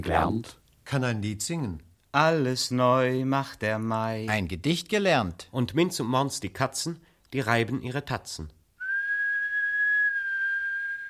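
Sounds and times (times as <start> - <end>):
speech: 0.0 - 8.6
person whistling a single sustained high note: 8.8 - 11.0.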